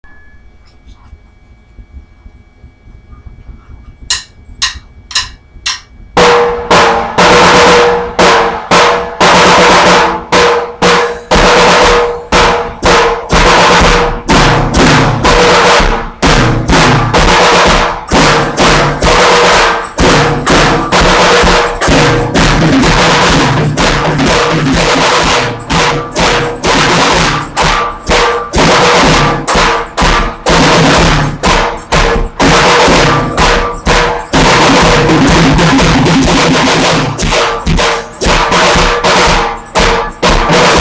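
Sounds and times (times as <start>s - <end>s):
drum solo: 4.0s - 40.7s
tambourine: 10.7s - 40.7s.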